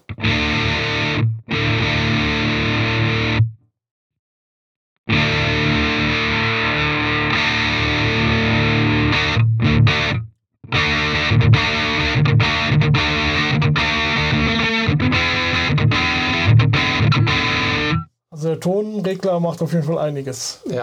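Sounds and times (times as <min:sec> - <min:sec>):
distorted electric guitar through amp and distortion pedal with reverb: 0:00.0 - 0:03.5, 0:05.1 - 0:18.0
speech: 0:19.2 - 0:20.8.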